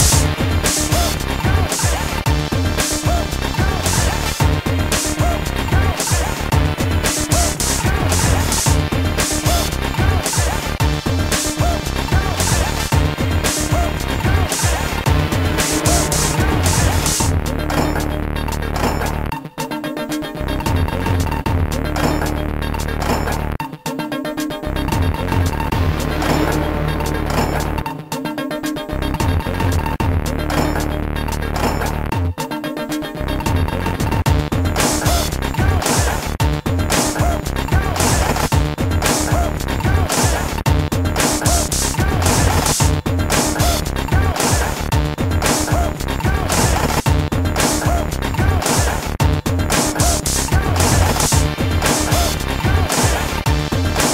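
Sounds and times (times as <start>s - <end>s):
background music loop: 0.0s - 54.1s.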